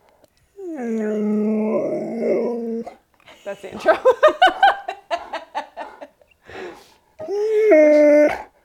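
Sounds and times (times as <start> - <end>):
male dog howling and whimpering: 0.6 - 3.0, 7.2 - 8.6
speech: 3.5 - 4.4
people laughing: 3.5 - 6.2.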